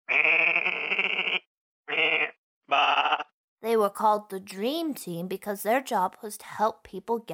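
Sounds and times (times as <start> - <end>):
sheep bleating: 0.1 - 3.3
speech: 3.7 - 7.3.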